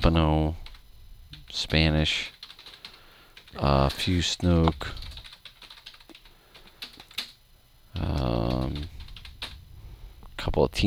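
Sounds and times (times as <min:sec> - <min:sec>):
speech: 0:00.0 - 0:00.6, 0:01.5 - 0:02.4, 0:03.6 - 0:05.0, 0:08.0 - 0:08.9, 0:10.5 - 0:10.8
keyboard clicks: 0:00.6 - 0:07.4, 0:08.0 - 0:09.6.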